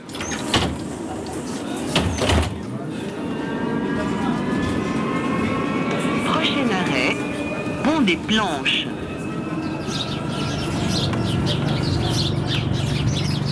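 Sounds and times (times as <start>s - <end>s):
trolleybus sliding doors clattering: 0.0s - 2.7s
recorded trolleybus stop announcement: 3.9s - 13.4s
speech: 8.0s - 9.0s.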